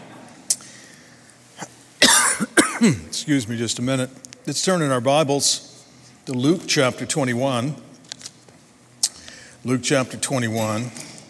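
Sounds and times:
person coughing after choking on water: 1.6 - 3.1
speech: 2.8 - 5.7, 6.3 - 7.9, 9.6 - 11.0.

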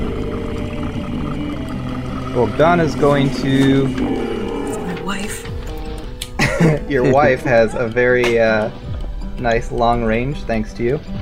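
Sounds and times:
dragon roar, deep rumbling throaty growl: 0.0 - 6.1
speech: 2.4 - 4.3, 6.6 - 8.8, 9.4 - 11.2
laughter: 6.3 - 8.7.

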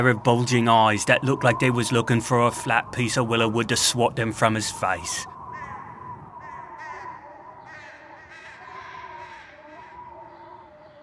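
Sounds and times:
speech: 0.0 - 5.3
flock of crows cawing overhead: 4.4 - 11.0.

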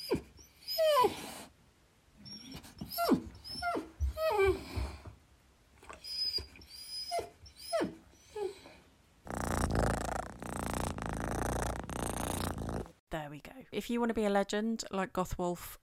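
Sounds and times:
pet dog whining and yelping: 0.0 - 1.5, 2.2 - 5.0, 5.8 - 8.8
pet cat purring: 9.2 - 13.0
speech: 13.4 - 15.8.

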